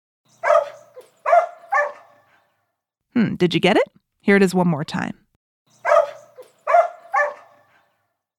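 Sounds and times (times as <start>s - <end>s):
sheepdog barking: 0.4s - 2.5s, 5.8s - 8.0s
speech: 3.2s - 5.2s.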